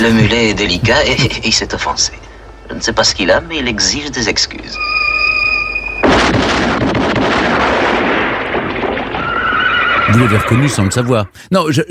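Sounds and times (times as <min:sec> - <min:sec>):
speech: 0:00.0 - 0:05.0, 0:10.1 - 0:11.9
faint sustained musical tones: 0:01.2 - 0:06.1
Colt 1851 Navy cylinder revolver gunshot: 0:06.0 - 0:09.3.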